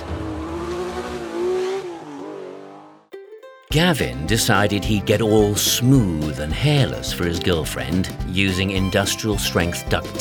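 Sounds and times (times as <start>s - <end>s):
sports car engine revving: 0.0s - 3.1s
speech: 3.7s - 10.1s.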